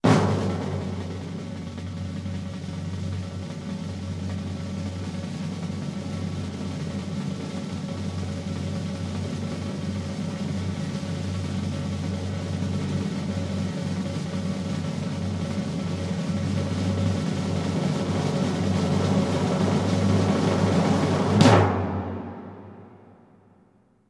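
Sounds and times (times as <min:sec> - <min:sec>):
snare drum roll: 0:00.0 - 0:23.2.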